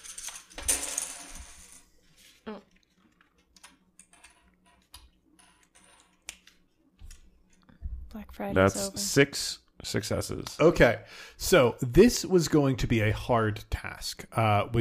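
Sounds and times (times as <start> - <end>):
coins being flipped and dropped onto a surface: 0.0 - 1.9, 4.0 - 6.2
speech: 2.5 - 2.7, 8.1 - 14.7.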